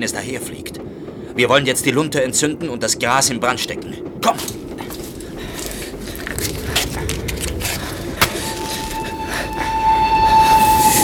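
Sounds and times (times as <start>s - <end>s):
speech: 0.0s - 0.8s, 1.4s - 4.6s
steam train rumbling along the tracks: 0.0s - 11.0s
steady high whistling tone: 8.3s - 11.0s.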